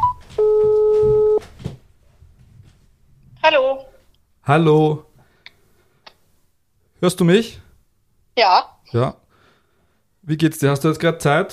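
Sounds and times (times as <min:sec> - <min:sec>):
electronic telephone ring tone: 0:00.0 - 0:01.4
speech: 0:03.5 - 0:03.9, 0:04.5 - 0:05.1, 0:07.0 - 0:07.6, 0:08.4 - 0:09.2, 0:10.3 - 0:11.5.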